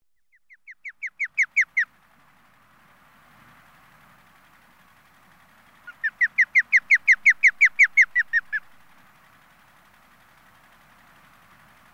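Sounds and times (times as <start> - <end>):
osprey giving short downslurred whistled chirps: 0.2 - 1.9, 5.8 - 8.8.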